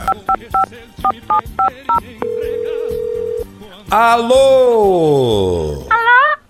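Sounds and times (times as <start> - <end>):
speech: 0.5 - 2.4, 3.9 - 6.2
steady telephone tone: 1.6 - 3.4.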